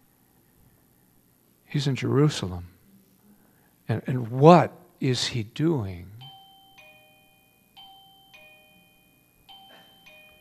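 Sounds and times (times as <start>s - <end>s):
speech: 1.7s - 2.8s, 3.9s - 6.2s
electronic doorbell chiming: 6.2s - 10.3s.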